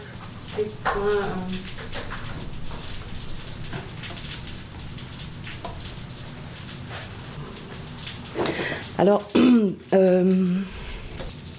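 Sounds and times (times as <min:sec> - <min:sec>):
rain falling: 0:00.0 - 0:11.5
speech: 0:00.6 - 0:02.0, 0:09.0 - 0:10.8.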